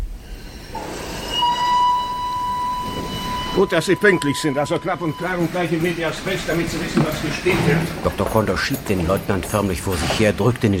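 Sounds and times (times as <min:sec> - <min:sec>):
long steady high-pitched squeal or whistle: 0:00.0 - 0:07.4
Vienna express train departing from a station rumbling: 0:00.0 - 0:10.6
speech: 0:03.6 - 0:10.7.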